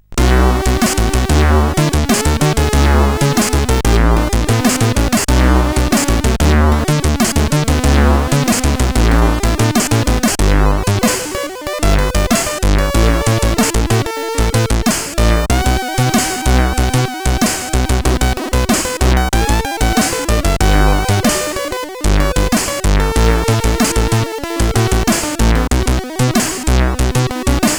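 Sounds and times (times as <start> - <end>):
intro tune on a SID 8580R5 sound chip: 0.2 - 27.7.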